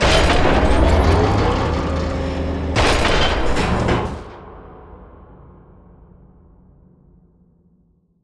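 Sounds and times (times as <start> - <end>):
vertical elevator moving: 0.0 - 4.3.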